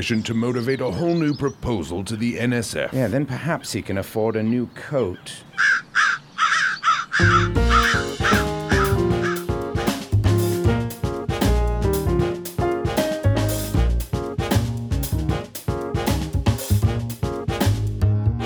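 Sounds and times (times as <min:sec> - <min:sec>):
speech: 0:00.0 - 0:05.7, 0:07.2 - 0:07.8
crow cawing: 0:05.5 - 0:09.5
loud music with a steady beat: 0:07.4 - 0:18.0.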